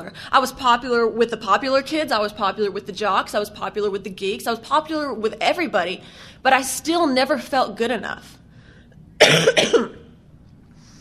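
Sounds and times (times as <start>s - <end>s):
speech: 0.1s - 8.4s, 9.2s - 10.0s
harsh cough: 9.2s - 10.1s.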